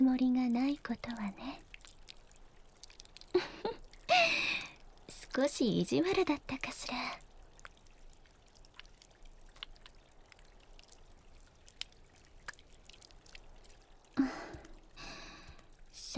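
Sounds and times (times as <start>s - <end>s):
speech: 0.0s - 1.6s, 5.4s - 7.2s
soft water drips: 0.0s - 16.1s.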